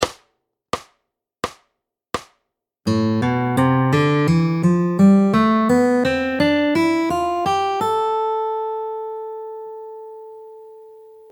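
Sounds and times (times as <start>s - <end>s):
fingerstyle guitar in Spanish style: 2.9s - 11.3s.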